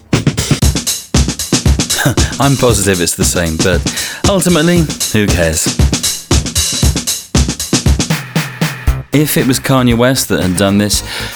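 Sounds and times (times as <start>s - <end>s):
slowed-down snare drum loop with overhead mic and distortion: 0.0s - 11.3s
speech: 2.0s - 6.0s, 9.2s - 11.3s.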